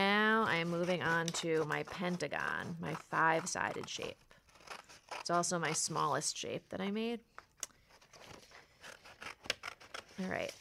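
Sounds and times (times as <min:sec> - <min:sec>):
scissors cutting paper: 0:00.2 - 0:06.0, 0:08.2 - 0:10.6
speech: 0:00.6 - 0:04.3, 0:05.3 - 0:07.7, 0:10.2 - 0:10.6.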